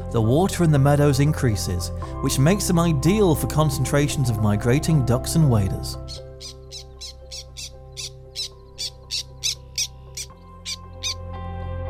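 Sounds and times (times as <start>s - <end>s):
speech: 0.1s - 6.9s
Black Tern giving short harsh calls near a creek bridge in Lithuania: 6.1s - 11.2s.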